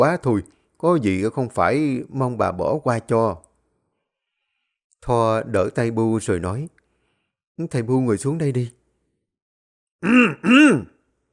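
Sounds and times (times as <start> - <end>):
speech: 0.0 - 3.4, 5.0 - 6.8, 7.6 - 8.8, 10.0 - 10.9
elderly woman clearing her throat: 10.0 - 10.9.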